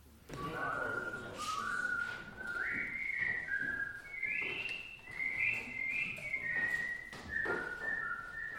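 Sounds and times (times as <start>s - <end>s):
choir group whistling a slow wandering melody: 0.2s - 8.5s.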